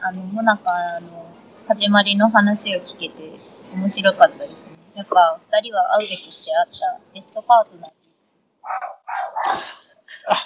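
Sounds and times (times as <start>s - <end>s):
speech: 0.0s - 8.0s, 9.4s - 10.4s
dog barking: 8.6s - 9.6s.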